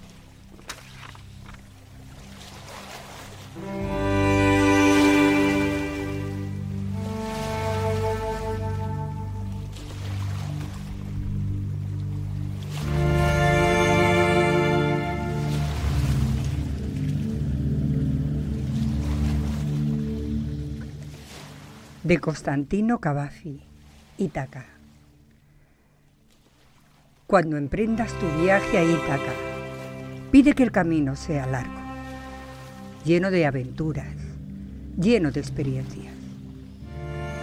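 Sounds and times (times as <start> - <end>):
slow calm instrumental music with sustained melodic tones: 0.0 - 22.6, 27.7 - 37.4
steady low bass drone: 3.6 - 21.2, 27.8 - 35.6, 36.2 - 37.4
speech: 22.1 - 24.8, 27.3 - 29.5, 30.3 - 31.8, 33.0 - 34.2, 35.0 - 36.1.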